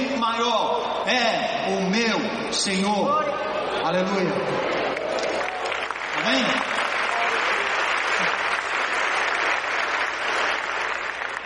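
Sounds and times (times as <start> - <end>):
speech: 0.2 - 4.9, 6.2 - 6.8
audience clapping: 4.7 - 11.4.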